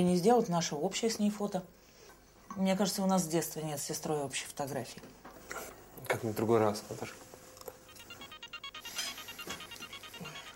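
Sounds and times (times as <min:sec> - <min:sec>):
speech: 0:00.0 - 0:01.9, 0:02.6 - 0:07.3
mobile phone ringing with an incoming call: 0:07.9 - 0:10.5.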